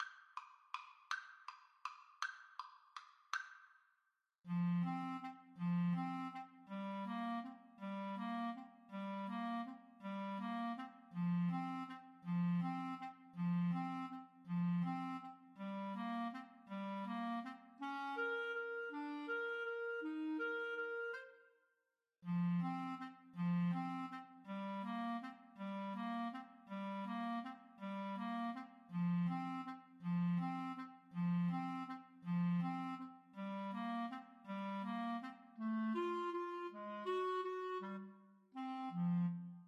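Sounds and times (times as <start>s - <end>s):
clarinet duet playing a waltz: 4.5s - 21.4s, 22.2s - 39.6s.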